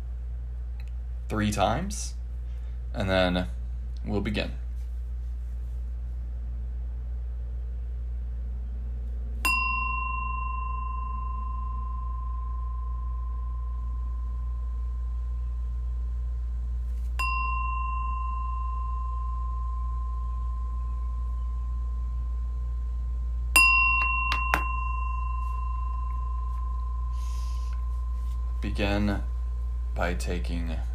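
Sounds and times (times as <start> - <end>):
faint low hum: 0.0 - 30.9
speech: 1.3 - 2.2, 2.9 - 4.6, 30.1 - 30.9
meditation bell struck to begin a meditation: 9.4 - 15.4, 17.2 - 30.9.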